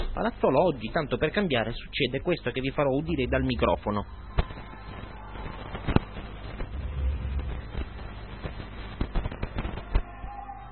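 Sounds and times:
noise: 0.0s - 10.7s
speech: 0.2s - 4.6s
fireworks banging: 3.1s - 10.1s.

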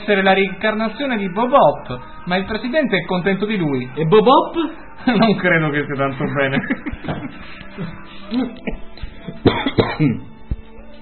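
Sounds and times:
speech: 0.1s - 10.3s
laughter: 5.0s - 9.4s
person coughing in harsh bursts: 8.4s - 10.3s
rough throat-clearing: 9.4s - 10.3s.

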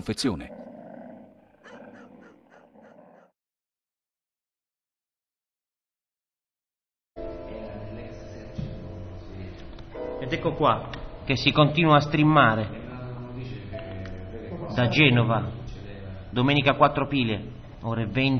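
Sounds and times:
speech: 0.0s - 0.6s, 10.5s - 12.8s, 14.8s - 15.6s, 16.3s - 18.3s
border dogs growling and snarling: 0.3s - 3.4s.

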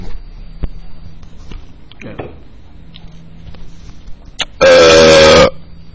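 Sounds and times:
loud rasping burp: 4.6s - 5.6s.

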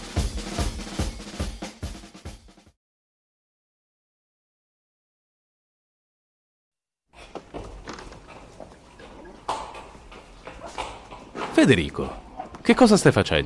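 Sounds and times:
scattered knocks: 7.2s - 12.8s
mule hooves clopping: 7.2s - 13.3s
speech: 11.6s - 13.4s.

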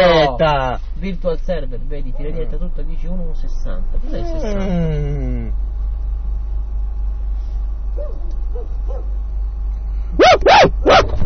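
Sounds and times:
speech: 0.0s - 5.6s
low steady hum: 0.0s - 11.2s
dog barking: 8.0s - 9.2s, 10.2s - 11.2s.

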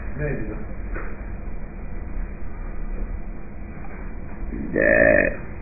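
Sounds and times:
speech: 0.2s - 0.8s
burp: 4.5s - 5.5s.

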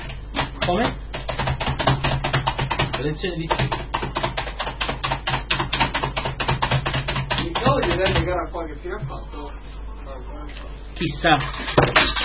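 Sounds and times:
typing on a Sun computer keyboard: 0.0s - 8.3s
speech: 0.7s - 1.0s, 3.0s - 3.8s, 7.9s - 12.2s.

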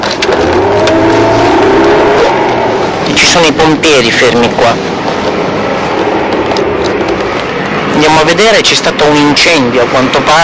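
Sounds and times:
car engine and road rumble heard from inside the vehicle: 0.0s - 10.4s
speech: 3.4s - 4.9s, 8.0s - 10.4s.

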